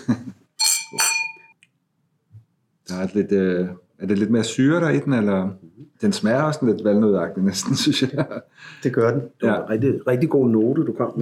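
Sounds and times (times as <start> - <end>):
speech: 0.1 - 0.4, 3.0 - 11.2
wine glasses clinking in a toast: 0.6 - 1.6
laughter: 7.6 - 8.6.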